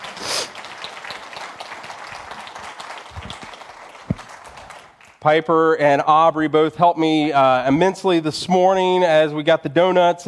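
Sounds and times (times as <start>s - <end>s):
crowd at a morning gathering applauding: 0.0s - 5.2s
speech: 5.2s - 10.2s.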